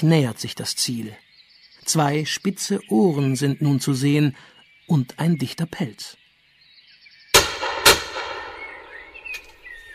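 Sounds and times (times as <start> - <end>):
speech: 0.0 - 6.2
faint bird chirps: 0.0 - 9.9
rifle shots fired by a hunter at a wildcat in the Spessart: 7.4 - 9.2.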